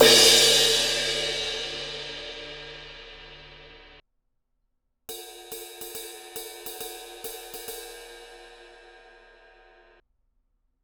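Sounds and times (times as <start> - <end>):
18 inch universal crash ride cymbal bell: 0.0 - 3.9.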